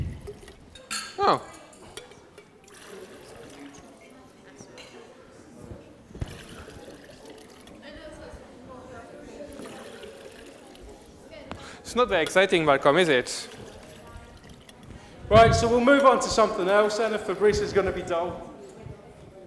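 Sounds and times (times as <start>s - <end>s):
coloured liquids pouring and trickling in beakers: 0.0s - 1.1s, 1.8s - 4.2s, 6.2s - 8.0s, 9.4s - 11.3s, 11.9s - 17.4s
beaker clink: 0.7s - 2.5s
speech: 1.2s - 1.5s, 11.9s - 13.6s, 15.3s - 18.5s.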